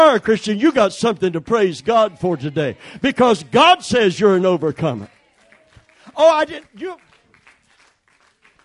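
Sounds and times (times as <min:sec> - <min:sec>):
speech: 0:00.1 - 0:05.2, 0:06.2 - 0:07.1
crowd clapping hands in a large room: 0:02.4 - 0:08.6.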